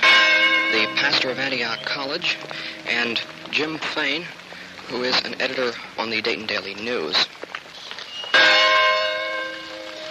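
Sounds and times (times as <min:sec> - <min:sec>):
Presbyterian church bell ringing in Birmingham, Alabama: 0:00.0 - 0:04.1, 0:08.3 - 0:10.1
speech: 0:00.8 - 0:07.4.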